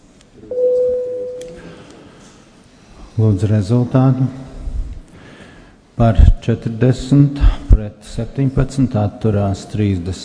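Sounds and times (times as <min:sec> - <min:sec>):
low room noise: 0:00.0 - 0:10.2
parliament voting bell sounding in a legislative chamber: 0:00.5 - 0:01.7
speech: 0:03.2 - 0:04.4, 0:06.0 - 0:10.2.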